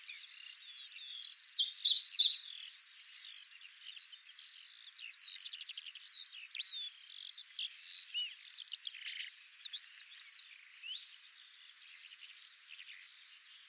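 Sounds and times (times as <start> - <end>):
Eurasian blue tit whistles and tinkling series: 0.4 - 3.8, 4.8 - 10.0.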